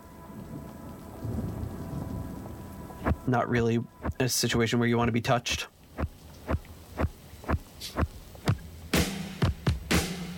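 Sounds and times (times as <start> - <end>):
low roll of thunder: 0.0 - 4.2
rain pouring on a stormy night in the city: 0.0 - 10.3
speech: 3.3 - 5.7.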